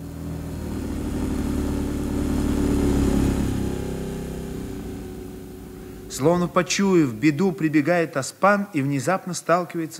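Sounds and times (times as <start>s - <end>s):
car engine accelerating as the vehicle pulls away: 0.0s - 7.9s
speech: 6.2s - 9.9s.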